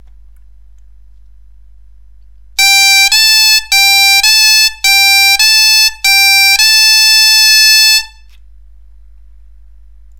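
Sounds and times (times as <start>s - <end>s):
bombarde playing a natural G-A scale: 2.6s - 8.1s.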